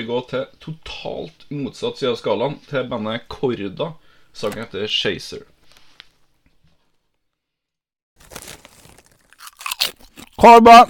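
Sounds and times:
speech: 0.0s - 5.5s, 10.4s - 10.8s
crisp snack being chewed: 8.2s - 10.4s.

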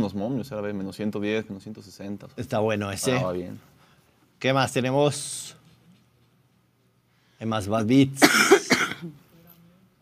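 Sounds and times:
speech: 0.0s - 3.8s, 4.4s - 5.6s, 7.4s - 9.2s
person coughing: 8.2s - 9.2s
rough throat clearing: 8.2s - 9.2s.

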